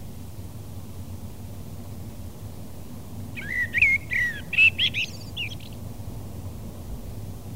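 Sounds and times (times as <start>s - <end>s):
common blackbird singing: 3.4s - 5.8s.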